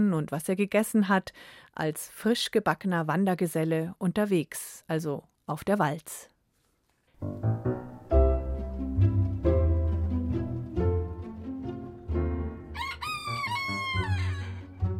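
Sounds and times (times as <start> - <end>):
speech: 0.0 - 6.3, 7.2 - 7.6
steady tonal background: 7.2 - 12.8
roosters crowing: 12.7 - 14.8.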